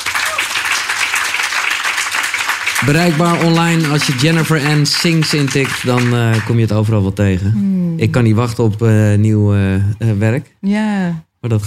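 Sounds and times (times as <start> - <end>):
crowd applauding a singer at the end of an interview: 0.0 - 6.9
speech: 2.8 - 11.6.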